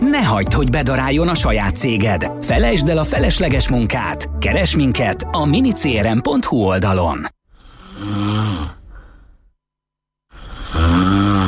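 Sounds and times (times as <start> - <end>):
speech: 0.2 - 7.4
person snoring: 7.5 - 9.4, 10.3 - 11.4.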